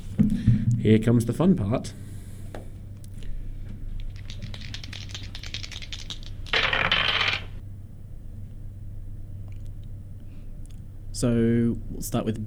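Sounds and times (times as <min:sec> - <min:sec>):
steady low hum: 0:00.0 - 0:12.4
speech: 0:00.8 - 0:02.1, 0:11.2 - 0:12.4
dice rolling across a hard tabletop: 0:04.4 - 0:07.6.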